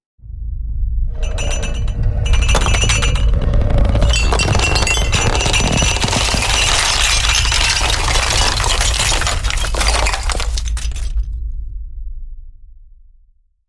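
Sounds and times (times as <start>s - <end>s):
earthquake rumble: 0.5s - 12.2s
building collapsing: 1.1s - 11.3s
crockery shaking: 1.2s - 11.2s.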